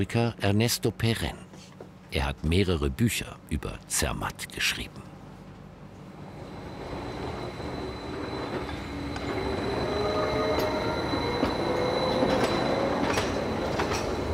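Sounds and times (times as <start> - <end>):
speech: 0.0 - 1.4, 2.1 - 5.1
Gornergrat Railway mountain train near Zermatt rumbling along the track: 6.1 - 14.3
sharp clicks and faint metallic squeals from train wheels: 6.8 - 14.3.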